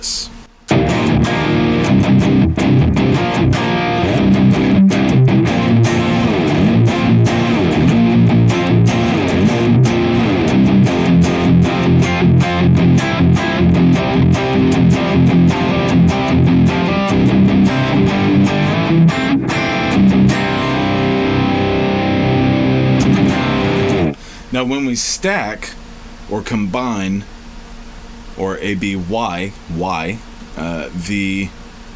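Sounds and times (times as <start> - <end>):
heavily distorted electric guitar through amp-modeler plugin playing palm-muted rhythms: 0.0 - 24.4
speech: 24.7 - 27.3, 28.4 - 31.6.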